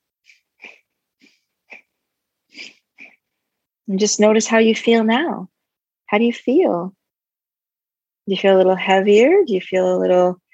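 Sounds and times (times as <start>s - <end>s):
quick shallow breaths into the upper chest: 0.2s - 3.6s
speech: 3.9s - 7.0s, 8.3s - 10.4s.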